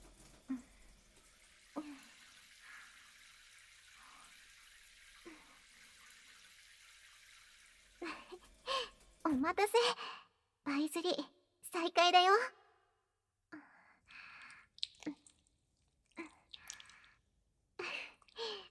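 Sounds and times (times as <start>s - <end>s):
warm water running from a tap or shower rinsing soap suds off a person: 0.0s - 9.7s, 14.4s - 17.2s
speech: 9.3s - 12.6s.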